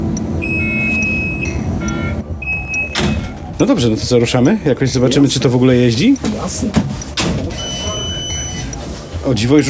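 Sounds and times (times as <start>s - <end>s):
bus electronic warning beep for open driver's cab door: 0.0s - 3.3s, 7.5s - 8.9s
speech: 3.6s - 7.1s, 9.2s - 9.6s.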